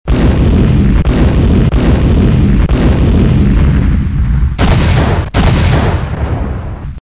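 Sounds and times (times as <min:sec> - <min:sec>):
big explosions: 0:00.1 - 0:07.0
rockets firing: 0:00.1 - 0:07.0.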